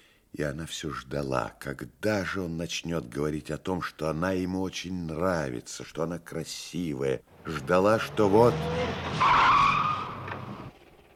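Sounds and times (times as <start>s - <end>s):
speech: 0.4s - 9.8s
large black car tires squealing pulling up to an entrance: 8.0s - 10.7s.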